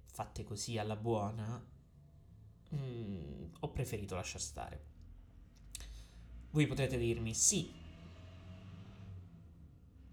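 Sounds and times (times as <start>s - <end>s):
speech: 0.2s - 1.8s, 2.7s - 4.9s, 6.5s - 7.8s
truck rumbling past outside: 4.6s - 10.1s.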